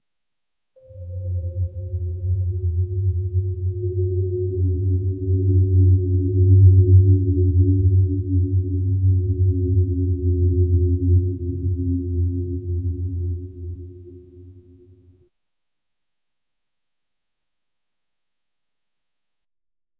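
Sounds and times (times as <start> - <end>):
low arcane magical staff hum: 0.8 - 15.2.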